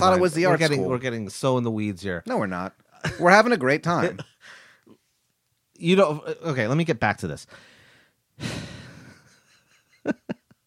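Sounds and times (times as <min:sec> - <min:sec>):
speech: 0:00.0 - 0:04.6, 0:05.8 - 0:07.7, 0:10.0 - 0:10.3
deep breath drawn by a speaker: 0:04.4 - 0:05.0, 0:07.5 - 0:09.1.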